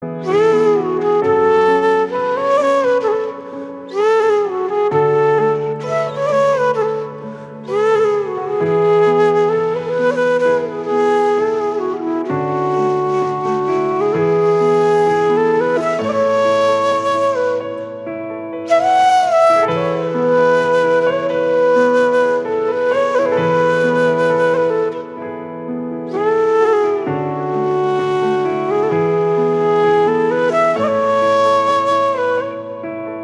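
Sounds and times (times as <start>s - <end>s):
flute ringtone instrumental: 0.0s - 33.2s.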